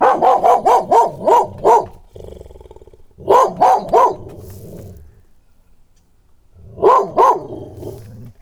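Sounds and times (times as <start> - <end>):
dog barking: 0.0 - 2.3, 3.2 - 4.8, 6.6 - 8.4.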